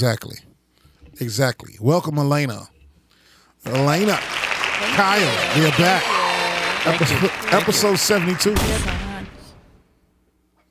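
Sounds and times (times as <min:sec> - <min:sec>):
speech: 0:00.0 - 0:00.5, 0:01.2 - 0:02.7, 0:03.6 - 0:06.2, 0:06.8 - 0:09.0
laughter: 0:03.7 - 0:08.8
gunshot: 0:08.6 - 0:09.8.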